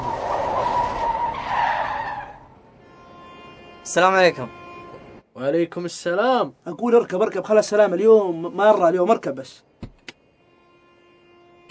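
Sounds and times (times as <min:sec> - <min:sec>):
car tire squeal while pulling over and stopping beside the curb: 0:00.0 - 0:02.6
speech: 0:03.9 - 0:04.6, 0:05.4 - 0:09.7.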